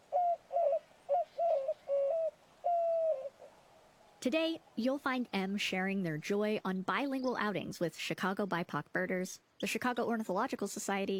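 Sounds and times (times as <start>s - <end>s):
white-winged dove cooing: 0.0s - 3.6s
speech: 4.2s - 11.1s.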